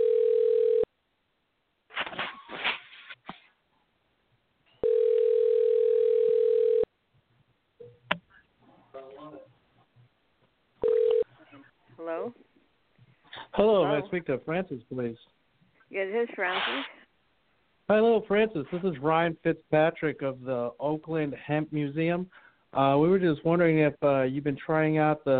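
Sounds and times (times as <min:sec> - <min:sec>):
telephone call ringing tones over the line: 0:00.0 - 0:00.9, 0:04.8 - 0:06.9, 0:10.8 - 0:11.3
speech: 0:13.6 - 0:17.0, 0:17.9 - 0:25.3.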